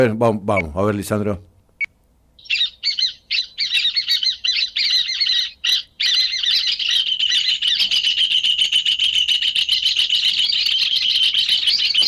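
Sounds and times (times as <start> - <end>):
speech: 0.0 - 1.5
rufous hornero singing with a fast shrill rattling trill: 2.4 - 12.0.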